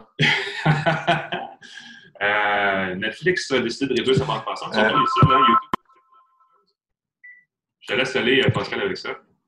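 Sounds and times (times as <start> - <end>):
speech: 0.1 - 1.4, 2.2 - 5.7, 7.9 - 9.3
laughter: 0.2 - 1.6
short high beep: 4.7 - 6.2
phone ringtone: 4.8 - 6.4.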